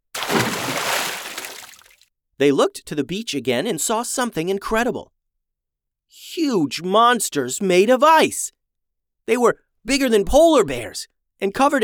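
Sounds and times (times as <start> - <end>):
heavy object dropping into water near a boat: 0.2 - 2.0
speech: 2.4 - 5.2, 6.1 - 8.6, 9.3 - 11.8.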